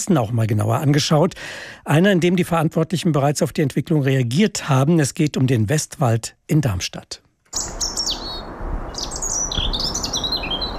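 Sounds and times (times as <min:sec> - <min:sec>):
speech: 0:00.0 - 0:07.8
European robin singing in the Westwald forest in Darmstadt Hesse Germany: 0:07.5 - 0:10.7.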